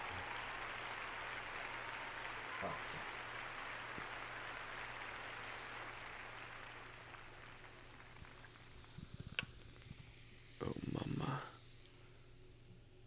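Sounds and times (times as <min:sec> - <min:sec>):
beer pouring into a glass: 0:00.0 - 0:09.8
beer fizzing: 0:00.0 - 0:12.0.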